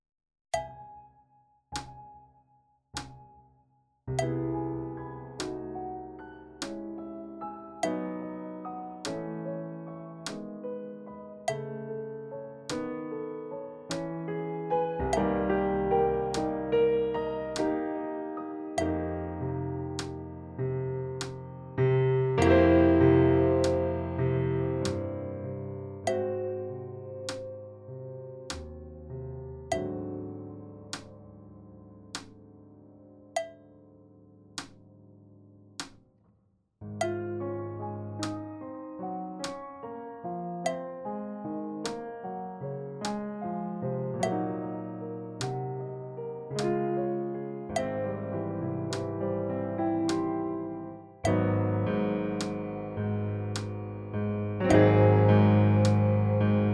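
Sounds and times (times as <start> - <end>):
piano playback at medium tempo for practice: 4.1 - 35.9, 36.8 - 56.7.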